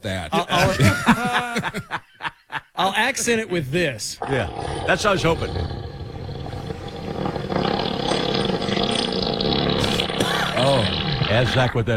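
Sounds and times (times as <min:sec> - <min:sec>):
speech: 0:00.0 - 0:01.0, 0:02.9 - 0:05.8, 0:10.8 - 0:11.9
laughter: 0:00.4 - 0:02.8
elephant fart: 0:04.2 - 0:11.8.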